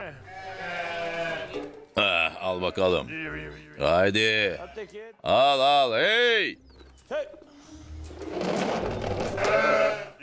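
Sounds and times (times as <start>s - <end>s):
sheep bleating: 0.0s - 1.7s, 2.3s - 5.0s, 9.4s - 10.2s
speech: 2.0s - 7.5s.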